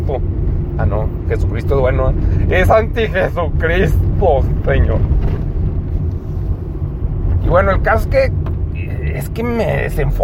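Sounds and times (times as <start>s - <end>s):
street traffic rumble through an open window: 0.0s - 10.2s
speech: 0.1s - 5.4s, 7.4s - 8.5s, 9.1s - 10.2s.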